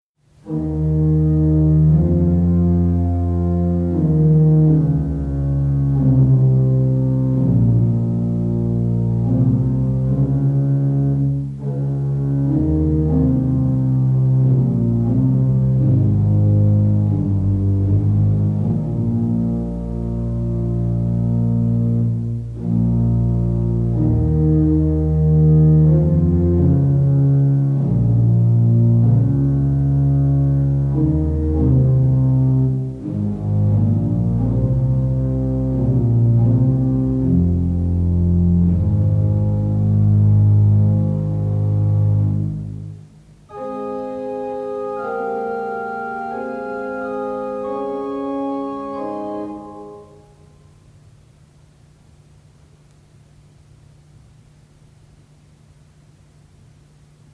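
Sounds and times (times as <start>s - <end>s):
French organ music: 0.4s - 50.6s.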